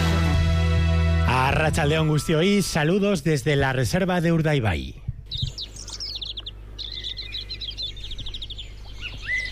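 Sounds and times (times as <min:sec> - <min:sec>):
steady low hum: 0:00.2 - 0:09.5
speech: 0:01.5 - 0:05.0
chorus of blackbirds, canaries, goldfinches, chaffinches and greenfinches singing: 0:01.9 - 0:09.5.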